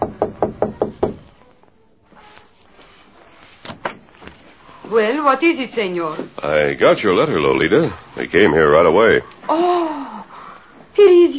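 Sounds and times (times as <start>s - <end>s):
knocking on a door: 0.0s - 1.3s
speech: 4.9s - 10.2s.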